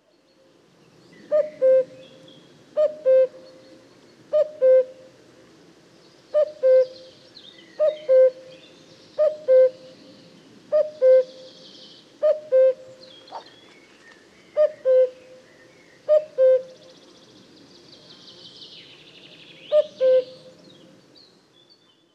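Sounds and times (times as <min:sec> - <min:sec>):
common cuckoo calling: 0:01.3 - 0:05.1, 0:06.3 - 0:17.0, 0:19.7 - 0:20.6.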